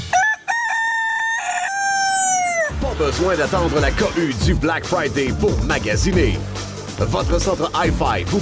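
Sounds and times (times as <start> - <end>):
person imitating a rooster's crow German-style: 0.1 - 2.8
speech: 3.0 - 8.3.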